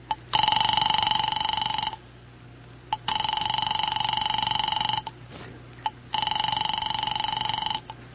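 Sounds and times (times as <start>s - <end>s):
unanswered electronic telephone ringing at a home: 0.0s - 2.0s, 2.9s - 5.2s, 5.8s - 8.0s
low steady hum: 0.0s - 8.1s.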